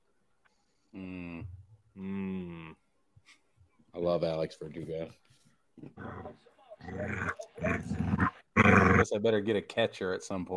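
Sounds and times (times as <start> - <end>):
speech: 4.0 - 8.2, 9.0 - 10.5
dog growling: 5.8 - 9.0.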